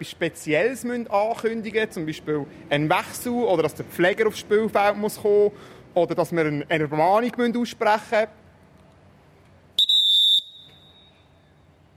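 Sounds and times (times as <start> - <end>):
speech: 0.0 - 8.4
referee whistle double blast: 9.8 - 11.4.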